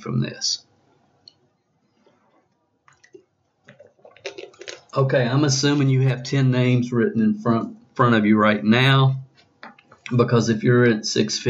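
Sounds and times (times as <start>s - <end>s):
speech: 0.0s - 0.6s, 5.0s - 9.2s, 10.1s - 11.4s
person sipping and swallowing a drink: 2.9s - 5.0s
wet mouth clicks: 2.9s - 5.0s.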